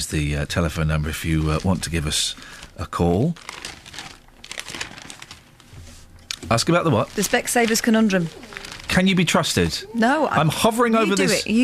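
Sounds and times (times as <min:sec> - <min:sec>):
speech: 0:00.0 - 0:03.8, 0:06.5 - 0:11.6
newspaper pages being handled and folded: 0:01.2 - 0:09.8.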